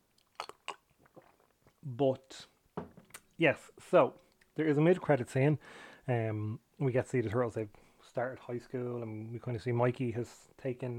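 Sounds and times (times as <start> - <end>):
person sipping barley water: 0.1 - 1.9
speech: 1.8 - 2.5, 3.4 - 10.9.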